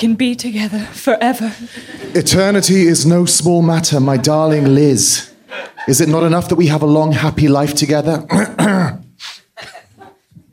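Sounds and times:
speech: 0.0s - 9.0s
laughter: 1.6s - 3.0s, 3.8s - 6.5s
person clearing throat: 8.3s - 10.2s.

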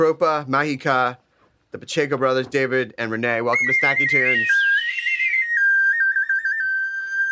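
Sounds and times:
speech: 0.0s - 4.6s
person whistling in a recording studio in Silver Lake: 3.6s - 7.2s.

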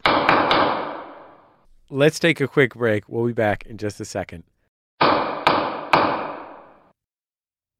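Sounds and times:
gavel banging with sharp wooden knocks: 0.0s - 1.6s, 5.0s - 6.9s
speech: 1.9s - 4.5s.

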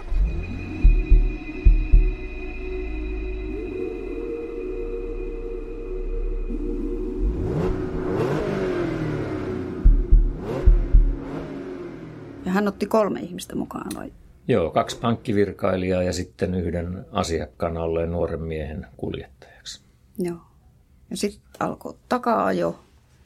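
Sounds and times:
car engine revving and accelerating away: 0.0s - 13.0s
speech: 12.6s - 20.5s, 21.1s - 22.8s.

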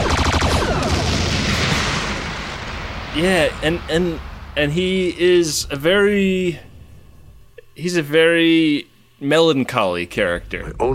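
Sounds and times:
torpedoes being fired with a booming roar: 0.0s - 7.4s
speech: 3.2s - 6.7s, 7.8s - 10.9s.

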